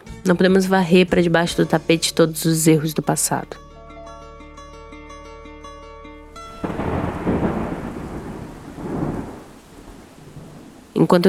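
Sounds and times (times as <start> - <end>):
speech: 0.2 - 3.6, 11.0 - 11.2
deep roll of thunder rumbling: 6.4 - 11.2
heavy rain pouring: 6.4 - 11.2.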